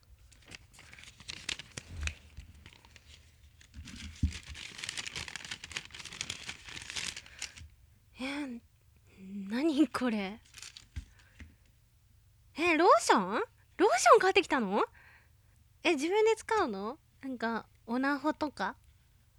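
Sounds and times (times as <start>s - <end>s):
gift wrapping paper crinkling and ripping as a present is opened: 0.2s - 7.7s, 10.4s - 11.3s
speech: 9.9s - 10.5s, 12.6s - 15.0s, 15.8s - 18.8s.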